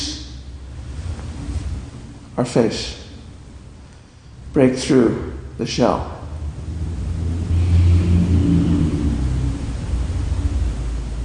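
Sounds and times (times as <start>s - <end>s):
traffic rumble: 0.0s - 11.2s
speech: 2.4s - 3.0s, 4.6s - 6.2s.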